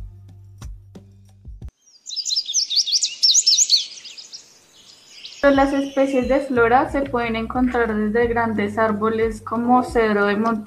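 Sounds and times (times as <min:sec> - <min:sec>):
bird singing high-pitched chirps and trills: 0:01.7 - 0:06.7
speech: 0:05.4 - 0:10.6.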